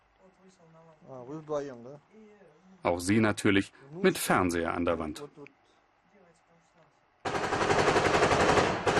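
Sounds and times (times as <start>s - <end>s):
speech: 0.4s - 5.6s
rapid machine-gun fire on the front line in Ukraine at sunset: 7.2s - 8.9s.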